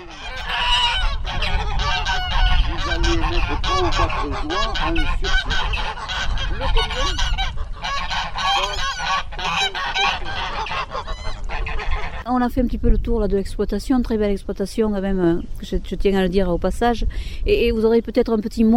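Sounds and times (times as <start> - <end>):
flock of agitated domestic geese honking: 0.0 - 12.3
speech: 3.5 - 5.9, 6.6 - 7.4, 9.1 - 18.7.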